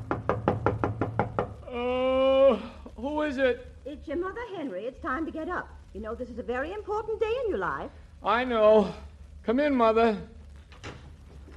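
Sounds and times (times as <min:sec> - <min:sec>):
knocking on a door: 0:00.0 - 0:01.6
speech: 0:03.3 - 0:10.4.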